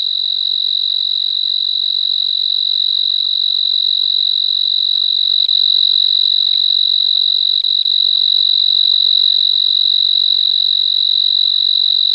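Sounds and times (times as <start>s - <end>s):
Oecanthus pictus tree cricket trilling at 24 degrees Celsius: 0.0s - 12.1s.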